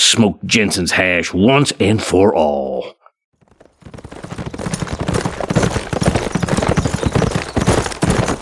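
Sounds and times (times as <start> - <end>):
speech: 0.1 - 3.0
many horses' hooves clopping as a large group of riders arrives: 3.4 - 8.3.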